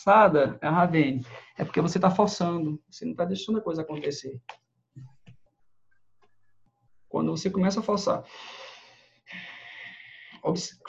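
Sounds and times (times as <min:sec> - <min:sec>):
speech: 0:00.0 - 0:05.1, 0:07.1 - 0:08.7, 0:10.4 - 0:10.8
long airy breaths drawn in slowly and deeply: 0:08.2 - 0:10.4.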